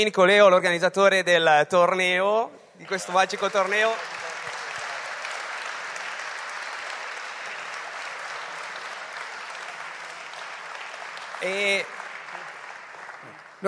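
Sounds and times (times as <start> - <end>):
speech: 0.0 - 4.2
audience applause at a tournament: 2.8 - 13.6.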